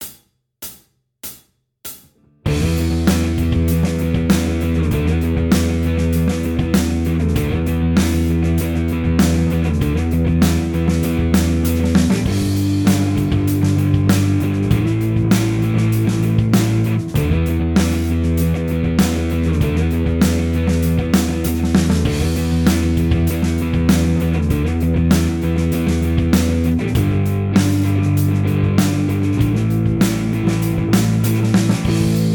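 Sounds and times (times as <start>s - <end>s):
slide guitar jam track: 2.5s - 32.3s.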